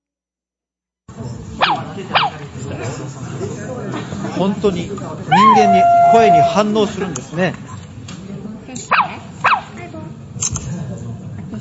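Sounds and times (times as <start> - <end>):
murmur of room noise: 1.1 - 11.5
Sony aibo robot dog yipping: 1.6 - 2.4, 5.3 - 6.6, 8.9 - 9.8
speech: 2.0 - 7.7.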